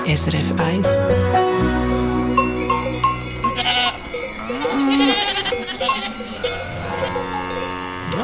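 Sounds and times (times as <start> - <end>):
speech: 0.1 - 1.4
cowbells clanking on cows and goats on a Swiss alpine pasture: 2.2 - 8.2
goat bleating on a Swiss alpine pasture: 3.4 - 8.2.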